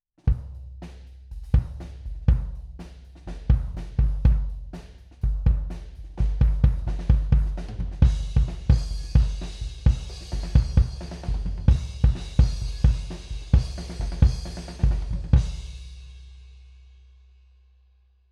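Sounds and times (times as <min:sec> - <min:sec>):
kick drum: 0:01.4 - 0:02.7, 0:03.4 - 0:04.6, 0:05.2 - 0:11.0, 0:11.7 - 0:15.6.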